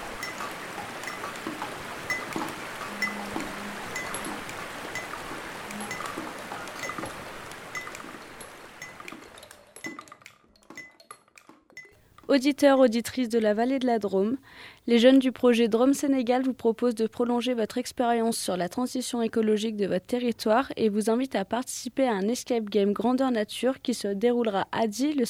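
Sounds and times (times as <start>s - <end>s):
small stream babbling in a river catchment: 0.0s - 10.1s
light water splashing: 0.0s - 12.0s
speech: 12.4s - 25.2s.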